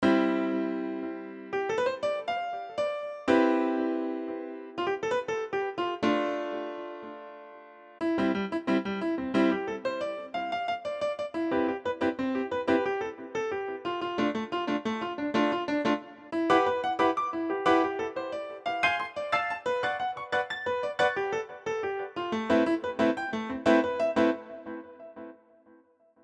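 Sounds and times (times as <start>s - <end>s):
jazz piano cycle: 0.0s - 25.4s.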